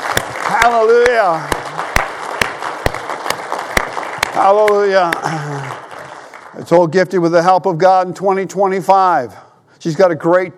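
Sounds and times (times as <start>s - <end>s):
audience clapping: 0.0s - 7.0s
speech: 0.6s - 1.6s, 4.4s - 5.8s, 6.6s - 10.5s.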